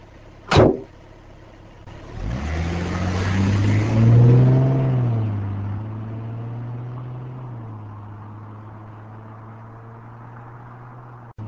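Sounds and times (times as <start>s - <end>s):
sharp click: 0.5s - 0.9s
private car engine turning over, revving and running: 1.8s - 11.4s.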